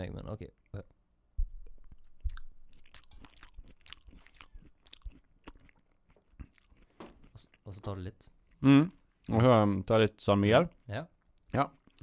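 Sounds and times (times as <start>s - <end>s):
speech: 0.0s - 0.9s, 7.8s - 12.0s
person chewing sauerkraut: 1.6s - 7.7s, 10.7s - 12.0s.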